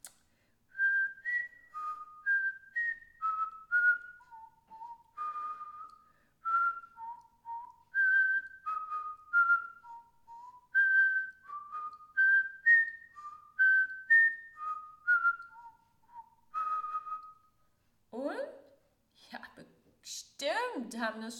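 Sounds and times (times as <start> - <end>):
person whistling a lively song melody: 0.7 - 17.5
speech: 20.9 - 21.3.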